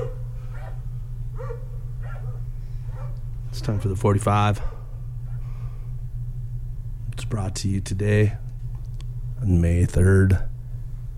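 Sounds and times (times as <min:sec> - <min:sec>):
dogs barking: 0:00.0 - 0:05.5
low rumbling hum: 0:00.0 - 0:11.1
speech: 0:03.6 - 0:04.8, 0:07.3 - 0:08.4, 0:09.4 - 0:10.5.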